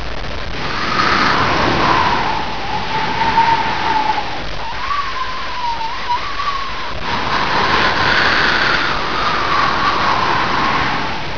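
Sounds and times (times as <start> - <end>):
wind blowing: 0.0 - 11.3.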